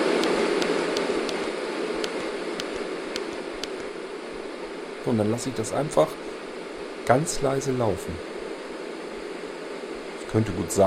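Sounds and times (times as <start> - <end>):
steady broadband white noise: 0.0 - 10.8
faint regular clicks: 0.2 - 3.9
speech: 5.0 - 6.2, 7.1 - 8.3, 10.3 - 10.8.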